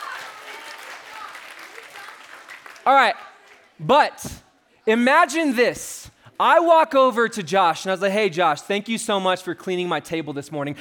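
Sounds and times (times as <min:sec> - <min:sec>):
audience applause: 0:00.0 - 0:03.7
speech: 0:02.9 - 0:10.7.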